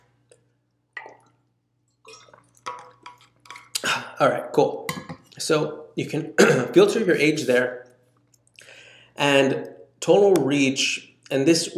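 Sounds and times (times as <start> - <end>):
steady low electrical hum: 0.0 - 11.7
wet liquid sounds of a drink of water: 1.0 - 3.8
speech: 4.2 - 4.8, 5.4 - 7.8, 9.2 - 11.7.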